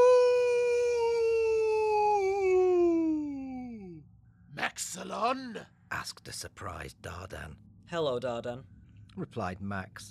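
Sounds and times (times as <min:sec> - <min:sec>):
long loud howl: 0:00.0 - 0:03.4
speech: 0:05.0 - 0:10.1.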